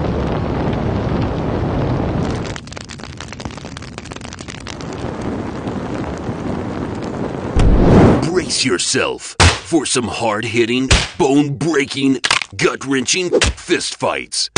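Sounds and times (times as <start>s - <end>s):
roaring flames and rushing fireballs: 0.0s - 9.1s
fire burst: 5.2s - 8.7s
speech: 8.5s - 14.5s.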